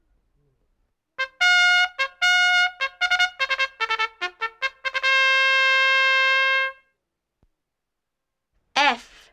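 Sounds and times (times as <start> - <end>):
trumpet playing staccato notes and a sustained tone: 1.2 - 6.9.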